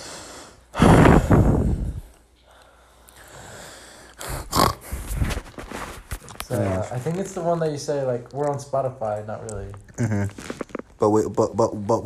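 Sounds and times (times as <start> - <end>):
heavy breathing into the microphone: 0.0 - 6.1
quick snorting breaths: 0.0 - 7.2
speech: 6.5 - 12.0.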